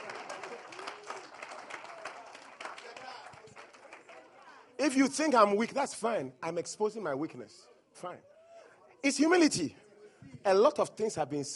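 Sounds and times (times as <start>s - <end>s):
large crowd clapping: 0.0s - 4.5s
voices and cheers: 0.0s - 4.5s
speech: 4.8s - 8.3s, 9.0s - 11.5s.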